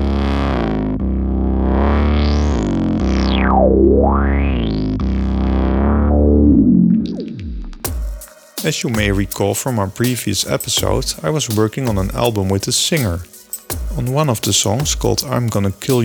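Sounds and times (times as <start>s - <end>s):
overdriven synthesizer lead through a guitar amp plugin: 0.0s - 9.4s
speech: 8.7s - 13.4s, 14.0s - 16.0s.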